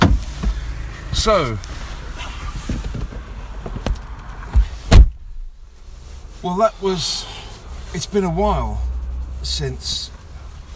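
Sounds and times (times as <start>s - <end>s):
car door slamming: 0.0s - 0.6s, 2.6s - 5.6s
thuds: 0.0s - 0.7s, 2.5s - 5.6s
shuffling movement getting into a car: 0.0s - 10.7s
speech: 1.2s - 1.8s, 6.4s - 7.3s, 7.9s - 10.2s.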